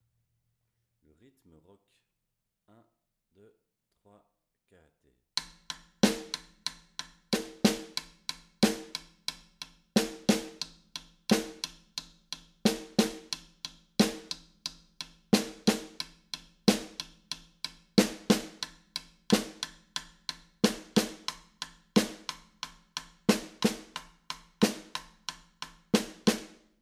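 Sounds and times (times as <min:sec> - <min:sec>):
rock snare drum: 0:05.4 - 0:26.7.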